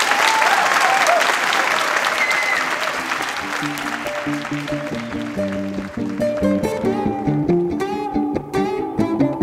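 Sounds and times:
large audience applauding a musician on stage: 0.0s - 7.2s
instrumental music: 2.6s - 9.4s.

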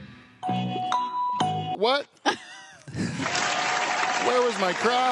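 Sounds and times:
electronic chimes and tones: 0.4s - 1.8s
live audience applause: 2.9s - 5.1s.

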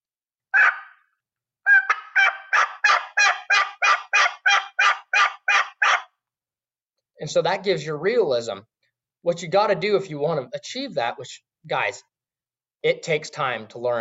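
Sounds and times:
raspy two-note turkey yelps from a box call: 0.5s - 6.1s
speech: 7.2s - 12.1s, 12.8s - 13.9s.

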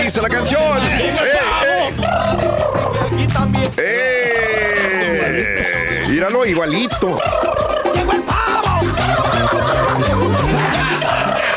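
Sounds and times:
speech: 0.1s - 1.3s, 6.2s - 11.5s
laughter: 0.4s - 11.5s
turkey gobbling: 1.4s - 3.3s, 6.6s - 11.5s.

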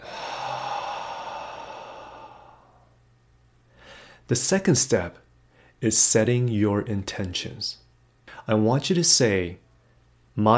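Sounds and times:
long slow exhale through the mouth: 0.0s - 2.9s
soft breath: 0.0s - 3.0s, 3.7s - 4.3s
speech: 4.3s - 5.2s, 5.8s - 7.8s, 8.5s - 9.6s, 10.4s - 10.5s.

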